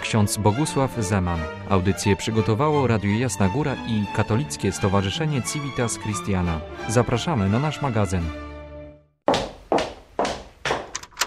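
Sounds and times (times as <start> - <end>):
speech: 0.1 - 8.5
heavy wooden thuds of a door sound effect: 9.3 - 11.0.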